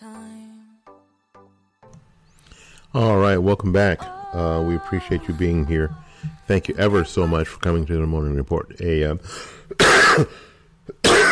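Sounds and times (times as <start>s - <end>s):
speech: 2.9s - 11.3s
person clearing throat: 9.7s - 11.3s
person coughing: 9.7s - 11.3s.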